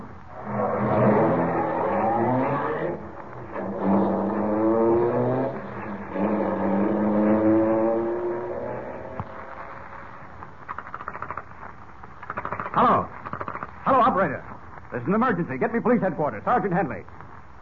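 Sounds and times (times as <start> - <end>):
passing car engine accelerating through gear changes on a road: 0.3 - 10.0
speech: 15.1 - 17.1.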